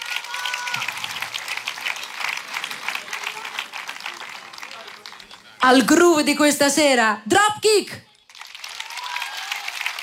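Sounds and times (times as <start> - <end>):
crowd applause for a trumpeter and a guitarist at an evening gig: 0.0 - 5.6, 8.1 - 10.0
speech: 5.6 - 8.1.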